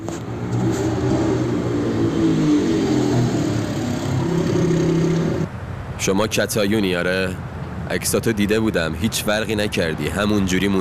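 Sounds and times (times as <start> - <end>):
motorcycle engine revving as it approaches: 0.0 - 5.5
speech: 6.0 - 10.8.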